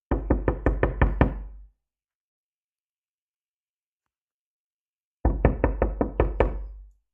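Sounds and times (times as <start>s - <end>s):
knocking on door: 0.1s - 1.5s, 5.2s - 6.7s.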